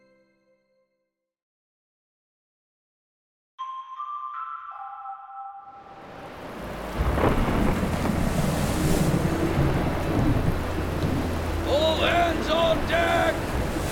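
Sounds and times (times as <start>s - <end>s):
swift wind over a ship's deck at sea: 4.8s - 13.9s
heavy rain in a storm at sea in the Pacific Ocean: 6.0s - 13.9s
thunder rumbling in a storm at sea in the Pacific Ocean: 6.2s - 13.9s.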